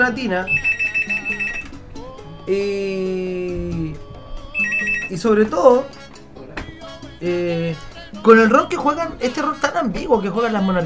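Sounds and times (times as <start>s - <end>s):
speech: 0.0s - 1.4s, 2.4s - 4.0s, 5.1s - 6.0s, 7.2s - 10.8s
telephone ringing for an incoming call: 0.0s - 1.8s, 4.6s - 5.5s.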